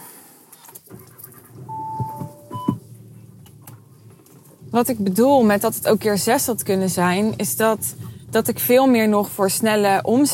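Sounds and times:
small rattling clicks in a car: 0.6s - 10.3s
road noise: 0.7s - 10.3s
low rumble of a car interior while driving: 0.8s - 10.3s
brief electronic tones in a car: 1.7s - 2.8s
speech: 4.7s - 10.3s.

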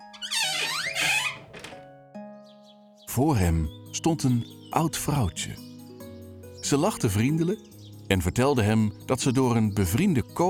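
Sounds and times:
heavy castle gate creaking open: 0.0s - 1.9s
speech: 3.2s - 5.7s, 6.7s - 10.4s.

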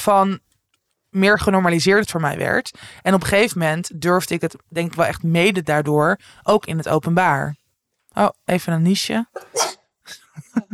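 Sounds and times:
speech: 0.0s - 0.5s, 1.1s - 7.6s, 8.2s - 10.7s
sneeze: 9.4s - 9.9s.

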